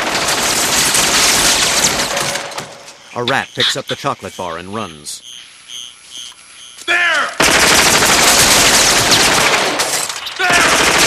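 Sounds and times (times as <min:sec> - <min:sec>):
gunfire with bullets bouncing off a video screen: 0:00.0 - 0:02.7, 0:07.4 - 0:11.0
speech: 0:03.2 - 0:05.3.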